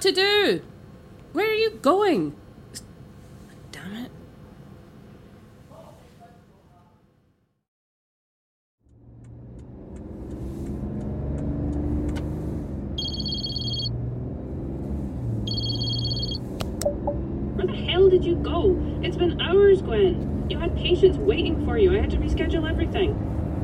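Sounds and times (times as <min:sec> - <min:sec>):
speech: 0:00.0 - 0:00.7, 0:01.3 - 0:02.4, 0:19.8 - 0:23.4
car engine starting and running: 0:08.9 - 0:23.6
high electronic beeping: 0:13.0 - 0:13.9, 0:15.5 - 0:17.3.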